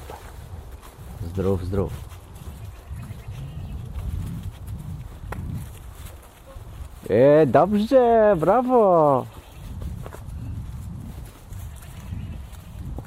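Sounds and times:
speech: 1.4 - 2.1, 7.1 - 9.4
goat bleating: 11.6 - 12.8.

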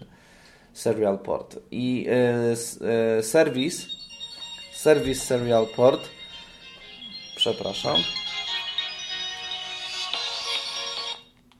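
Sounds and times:
speech: 0.8 - 4.0, 4.8 - 6.2, 7.4 - 8.2
phone ringtone playing a bright electronic melody: 3.3 - 11.4.

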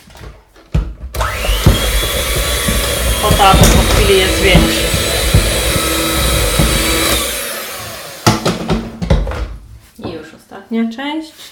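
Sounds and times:
dull bumps: 0.8 - 7.4
electric mixer running at low speed mixing flour batter: 1.2 - 8.8
speech: 3.4 - 4.9, 10.8 - 11.4.

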